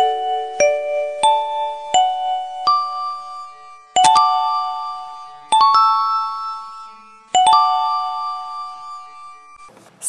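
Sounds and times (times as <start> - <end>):
end of class bell chime from a broadcast room bell system: 0.1 - 9.7.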